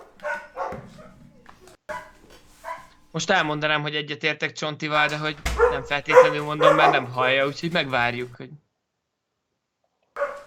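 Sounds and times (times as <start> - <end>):
dogs barking and yipping: 0.0 - 3.1, 5.4 - 7.7, 10.2 - 10.4
speech: 3.1 - 8.6.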